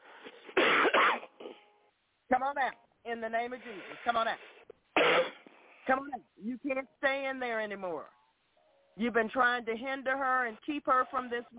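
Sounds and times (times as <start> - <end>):
soft breathy sounds: 0.0 - 0.6
person coughing: 0.5 - 1.7, 5.0 - 5.5
speech: 2.4 - 5.3, 5.9 - 8.2, 9.0 - 11.5.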